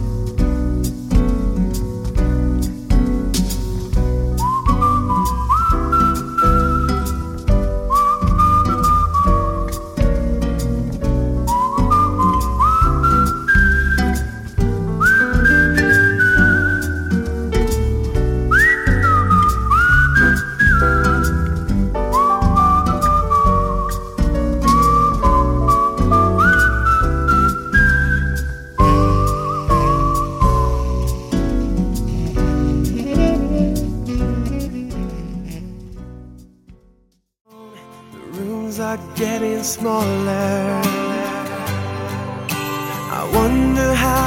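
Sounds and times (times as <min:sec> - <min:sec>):
full pop band backing: 0:00.0 - 0:36.0, 0:38.2 - 0:44.2
clear sliding whistled melody: 0:03.5 - 0:35.8, 0:40.2 - 0:44.2.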